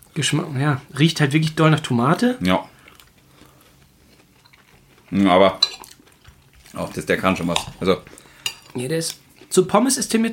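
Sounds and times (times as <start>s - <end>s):
speech: 0.2s - 2.7s, 5.1s - 5.7s, 6.8s - 10.3s
chewing and biting crunchy veggie snacks with ketchup: 2.4s - 9.6s.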